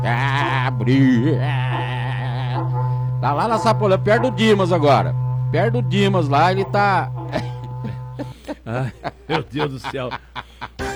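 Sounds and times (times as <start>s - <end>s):
speech: 0.0s - 1.8s, 3.2s - 7.5s, 8.2s - 10.4s
berrante cattle horn blown to open a radio programme in Moreira César: 0.0s - 8.7s
laughter: 0.0s - 10.9s.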